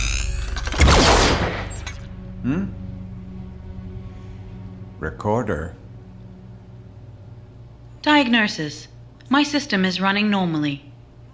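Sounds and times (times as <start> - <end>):
steady low hum: 0.0 - 11.3
cannon blast fired as a test: 0.6 - 2.0
speech: 2.4 - 2.8, 5.0 - 5.8, 8.0 - 10.9.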